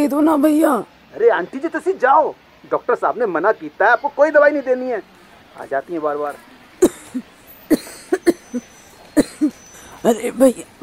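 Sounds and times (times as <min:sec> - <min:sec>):
speech: 0:00.0 - 0:06.5, 0:07.1 - 0:08.7, 0:10.0 - 0:10.7
woman coughing: 0:06.8 - 0:09.6.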